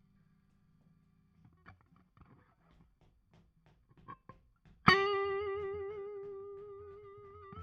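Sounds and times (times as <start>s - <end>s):
guitar solo: 4.9s - 7.6s.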